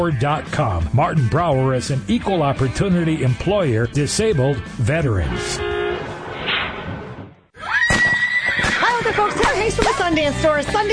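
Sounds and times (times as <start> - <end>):
speech: 0.0 - 5.8, 10.1 - 10.9
burst of rushing noise: 5.3 - 7.5
horse at riding stables whinnying: 7.6 - 9.3.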